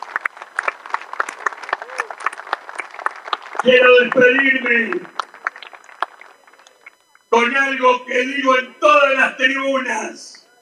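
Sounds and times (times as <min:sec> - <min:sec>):
crowd applause welcoming a mayor: 0:00.0 - 0:06.9
speech: 0:03.6 - 0:05.1, 0:07.4 - 0:10.4.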